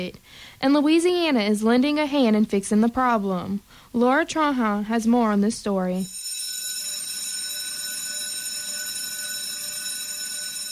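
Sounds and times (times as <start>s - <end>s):
speech: 0.0s - 6.2s
school class bell ringing: 6.0s - 10.6s.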